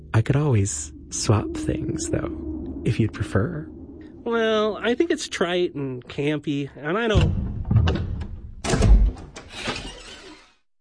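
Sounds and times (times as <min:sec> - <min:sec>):
speech: 0:00.2 - 0:08.1
door opening with a heavy thunk and scraping slide: 0:07.1 - 0:10.5.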